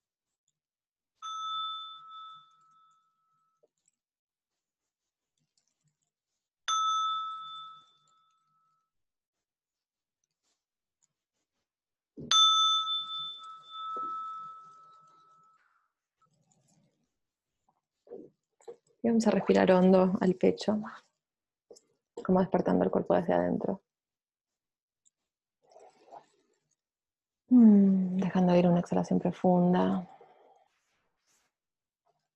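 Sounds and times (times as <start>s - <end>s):
meditation bell being struck: 1.2s - 3.5s, 6.7s - 8.7s, 12.3s - 15.6s
speech: 18.7s - 21.0s, 22.3s - 23.9s, 27.6s - 30.1s.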